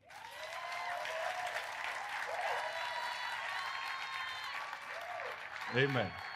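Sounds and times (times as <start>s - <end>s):
crowd cheering and whooping: 0.0s - 6.3s
large crowd applauding: 0.0s - 6.3s
speech: 5.7s - 6.3s.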